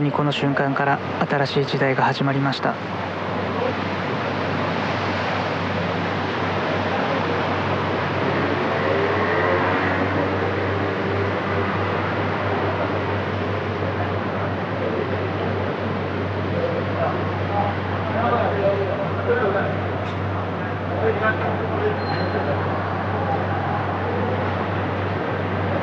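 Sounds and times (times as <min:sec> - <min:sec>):
speech: 0:00.0 - 0:03.1
steady low traffic rumble at an intersection in front of Sendai Station: 0:00.0 - 0:25.8
crowd of people's voices murmuring: 0:02.7 - 0:25.8
cars swishing past at a night intersection: 0:03.6 - 0:13.2.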